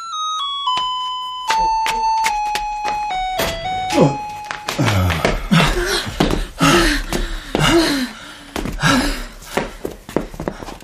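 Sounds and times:
electronic intercom doorbell chime at a home with descending tones: 0:00.0 - 0:05.4
out-of-breath visitor panting heavily: 0:04.8 - 0:10.8.

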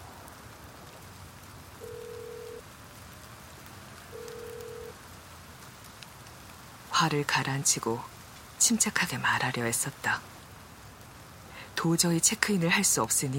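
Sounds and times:
rain hiss: 0:00.0 - 0:13.3
phone ringback tone: 0:01.8 - 0:02.6, 0:04.2 - 0:04.9
speech: 0:07.0 - 0:10.4, 0:11.8 - 0:13.3.

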